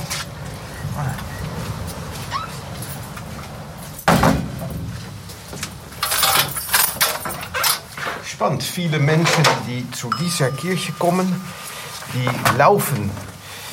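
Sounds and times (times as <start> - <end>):
steady noise: 0.0 - 13.7
door swinging shut with a solid thud: 4.1 - 4.9
speech: 8.4 - 13.3.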